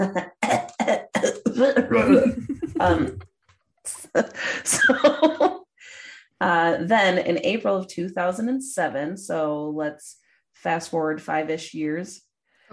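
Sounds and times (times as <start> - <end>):
person clearing throat: 0.0 - 3.2
person voiced murmuring: 0.0 - 3.2
speech: 0.0 - 3.2, 4.2 - 5.5, 6.4 - 12.7
person coughing with rough rasping bursts: 0.4 - 3.2
laughter: 1.6 - 3.2, 4.2 - 5.6.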